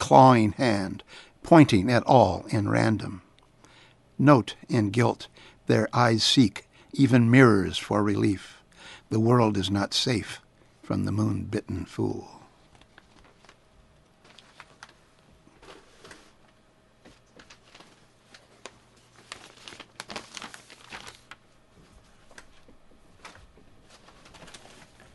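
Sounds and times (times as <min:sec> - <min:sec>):
speech: 0:00.1 - 0:03.2, 0:04.2 - 0:12.4
papers dropped on floor being gathered up and rustling: 0:12.6 - 0:13.6, 0:14.2 - 0:25.1.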